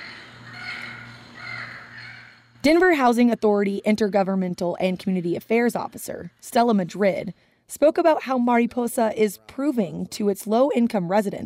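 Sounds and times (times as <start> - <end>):
recorded Yucatan parrot squawks from a museum-style educational push-button: 0.0 - 2.5
speech: 2.6 - 11.4.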